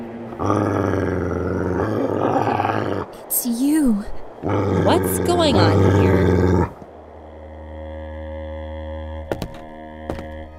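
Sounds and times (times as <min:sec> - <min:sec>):
dogs growling: 0:00.3 - 0:03.3, 0:04.4 - 0:09.4
speech: 0:00.4 - 0:00.8, 0:03.3 - 0:06.7.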